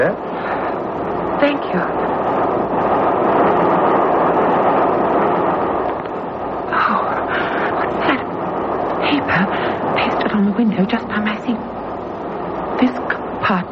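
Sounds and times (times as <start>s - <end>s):
speech: 0.0s - 0.3s, 1.4s - 2.2s, 10.6s - 11.0s
moving passenger train carriage rumbling: 0.0s - 13.7s.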